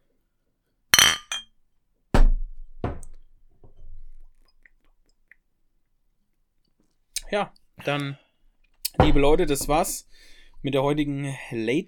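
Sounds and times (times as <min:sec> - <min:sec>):
glasses clinking together in a toast: 0:01.0 - 0:01.5
speech: 0:07.3 - 0:08.2, 0:09.0 - 0:11.8.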